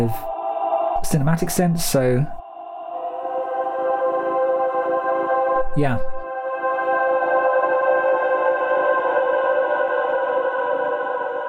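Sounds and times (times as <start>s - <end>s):
speech: 0.0s - 0.3s, 1.1s - 2.4s, 5.8s - 6.1s
heavily processed vocal drone in a music track intro: 0.0s - 11.4s.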